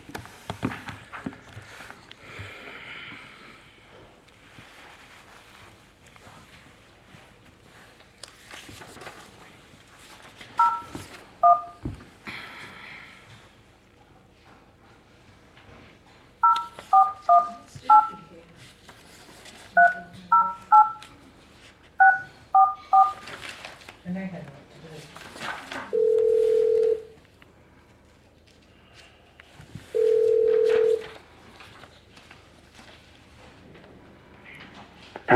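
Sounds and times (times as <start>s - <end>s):
faint noise: 0.0s - 35.3s
steady longer telephone ringing tone: 10.6s - 11.8s, 16.4s - 18.2s, 22.0s - 23.2s, 25.9s - 27.1s, 30.0s - 31.1s
telephone keypad tones dialing a phone number: 10.6s - 11.8s, 16.4s - 18.2s, 19.8s - 21.1s, 22.0s - 23.2s, 26.0s - 27.1s, 30.0s - 31.0s.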